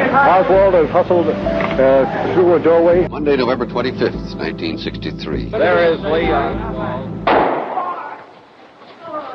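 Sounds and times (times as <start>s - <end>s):
speech: 0.2s - 7.3s
gunshot in basement of Dallas Police Headquarters: 7.3s - 8.3s.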